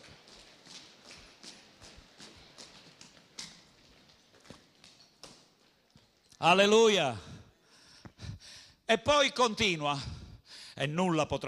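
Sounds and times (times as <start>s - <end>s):
audience at a Christian sermon stamping feet on the floor: 0.0s - 6.2s
speech: 6.4s - 7.3s, 8.9s - 10.2s, 10.8s - 11.4s.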